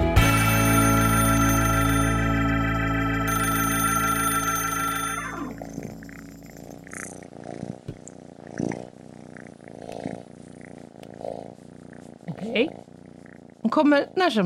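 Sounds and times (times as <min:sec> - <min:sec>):
brief tonal chime: 0:00.2 - 0:06.5
small kitten purring: 0:04.5 - 0:14.4
speech: 0:13.7 - 0:14.4.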